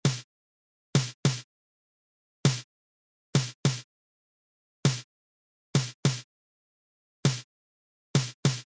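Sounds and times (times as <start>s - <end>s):
snare drum pattern of a fanfare band: 0.0s - 0.2s, 1.0s - 1.4s, 3.4s - 3.8s, 5.8s - 6.2s, 7.2s - 7.4s, 8.2s - 8.6s.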